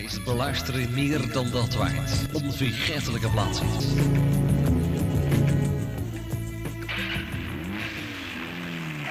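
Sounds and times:
speech: 0:00.0 - 0:04.4
radio jingle for a gospel chart countdown: 0:00.0 - 0:05.8
car engine revving: 0:02.0 - 0:09.1.

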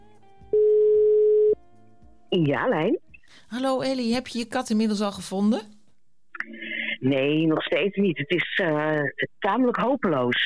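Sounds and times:
telephone tone while a call is placed: 0:00.5 - 0:01.6
speech: 0:02.3 - 0:05.8, 0:07.0 - 0:10.4.

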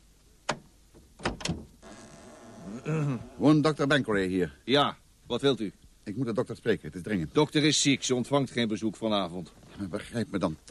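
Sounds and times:
front door unlatched and swung open: 0:00.5 - 0:02.6
speech: 0:02.8 - 0:10.6.

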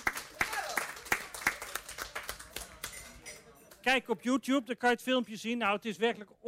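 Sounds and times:
audience clapping in a steady rhythmic beat: 0:00.0 - 0:04.0
speech: 0:03.9 - 0:06.4.

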